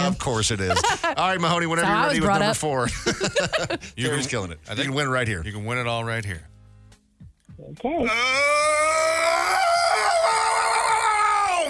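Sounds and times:
speech: 0.1s - 6.5s, 7.6s - 9.1s
laughter: 0.6s - 1.7s, 2.8s - 4.4s
tipsy person whooping and screaming: 8.0s - 11.6s.

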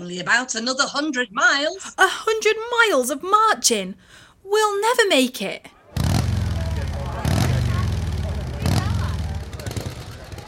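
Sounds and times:
speech: 0.0s - 5.8s
motorcycles ridden by a motorcycle club roaring past: 5.9s - 10.4s.

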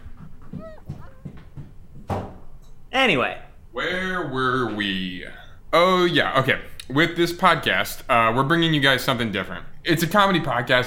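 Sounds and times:
dog yelping and panting: 0.0s - 1.5s
speech: 3.0s - 10.8s.

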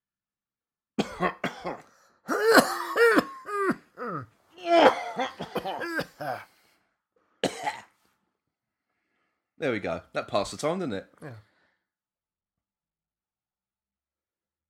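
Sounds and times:
people coughing and clearing their throats: 1.0s - 6.5s, 7.4s - 7.9s
speech: 9.6s - 11.5s.

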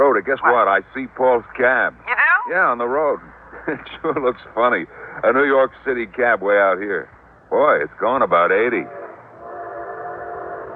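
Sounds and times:
speech: 0.0s - 9.0s
low rumble of the train: 0.0s - 10.7s
laughter: 2.9s - 5.3s
train horn blaring at a crossing: 8.7s - 10.7s.

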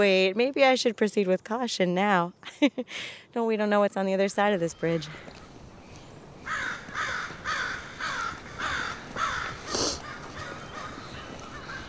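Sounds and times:
speech: 0.0s - 5.4s
crow cawing: 6.4s - 11.8s.

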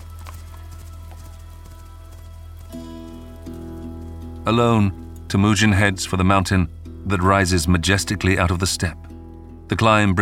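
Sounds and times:
horse hooves galloping: 0.0s - 6.8s
speech: 4.4s - 9.1s, 9.7s - 10.2s.

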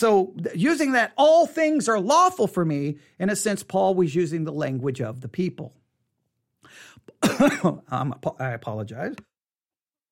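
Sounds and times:
speech: 0.0s - 5.8s, 6.7s - 9.3s
rough voiced throat clearing: 7.1s - 7.8s
speaker coughing: 7.1s - 7.9s.

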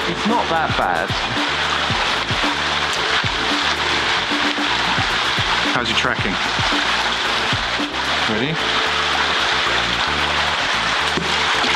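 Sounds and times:
low rumbling hum: 0.0s - 11.7s
river water flowing across a ford on a road: 0.0s - 11.7s
speech: 0.1s - 3.0s, 5.8s - 7.1s, 8.3s - 9.0s.

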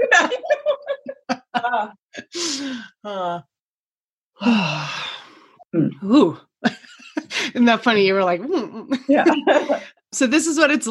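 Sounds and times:
laughter: 0.0s - 1.9s, 9.1s - 9.9s
speech: 1.8s - 3.5s, 4.4s - 5.0s, 5.7s - 10.8s
person yawning with a breathy groaning voice: 4.4s - 5.5s.

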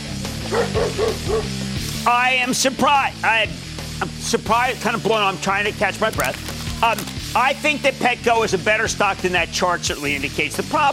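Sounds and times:
dog barking in short high-pitched yaps: 0.4s - 1.6s
speech: 0.5s - 10.9s.

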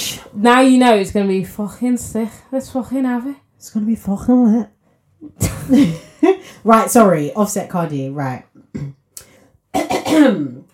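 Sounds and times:
speech: 0.3s - 9.0s, 9.8s - 10.6s
loud rasping throat clearing: 8.7s - 9.0s.

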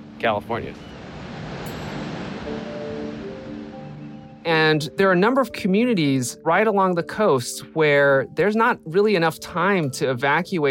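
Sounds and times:
large ocean waves breaking on shore: 0.0s - 4.9s
speech: 0.2s - 1.0s, 4.4s - 10.7s.

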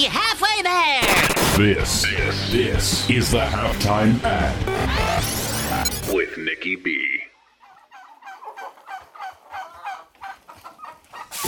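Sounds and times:
speech: 0.0s - 7.2s
flock of turkeys gobbling on a turkey farm: 7.3s - 11.4s.

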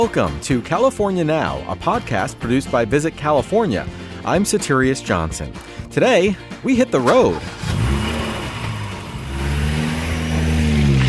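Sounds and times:
speech: 0.0s - 7.6s
car engine revving and accelerating: 6.8s - 11.0s.

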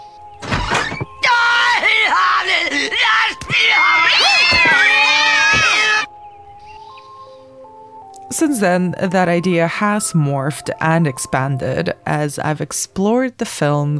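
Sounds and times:
cats yowling and caterwauling: 0.4s - 6.1s
cartoon cat lady screaming: 1.2s - 6.1s
speech: 8.4s - 13.9s.

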